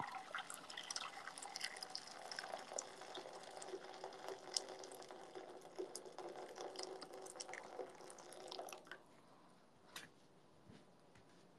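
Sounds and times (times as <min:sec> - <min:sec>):
freshly boiled hot water poured into a frying pan: 0:00.0 - 0:08.9.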